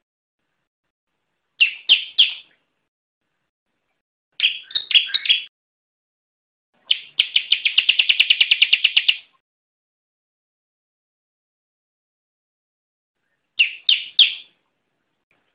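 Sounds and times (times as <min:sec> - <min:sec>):
bar-winged prinia song of sharp chirps and fast trill: 0:01.5 - 0:02.7, 0:03.8 - 0:05.5, 0:06.8 - 0:09.4, 0:13.2 - 0:15.5.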